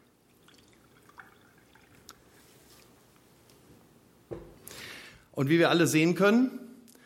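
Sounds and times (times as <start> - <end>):
water poured from carafe into glass: 0.3 - 2.4
speech: 5.4 - 6.6.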